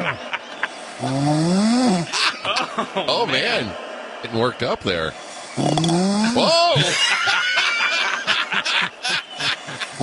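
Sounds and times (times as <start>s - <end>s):
laughter: 0.0s - 0.8s, 2.1s - 3.9s, 6.2s - 10.0s
loud human snoring: 0.9s - 2.1s, 5.5s - 6.5s, 9.8s - 10.0s
speech: 1.0s - 1.5s, 2.8s - 7.5s.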